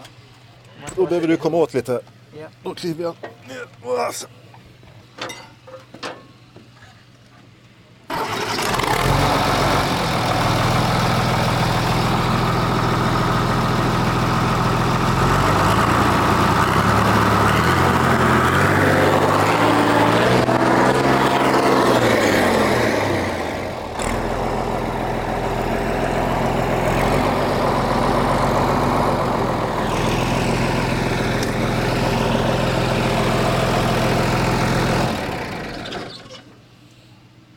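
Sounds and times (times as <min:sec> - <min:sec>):
speech: 0:00.9 - 0:04.4
clicks and clunks: 0:05.2 - 0:07.3
large engine with non-original exhaust pipe starting, idling and revving: 0:08.1 - 0:36.3.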